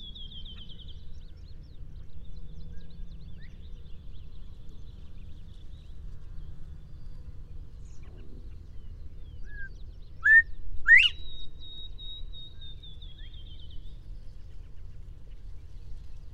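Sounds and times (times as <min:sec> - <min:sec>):
low rumbling background noise: 0:00.0 - 0:16.3
northern bobwhite whistled call: 0:09.4 - 0:12.5.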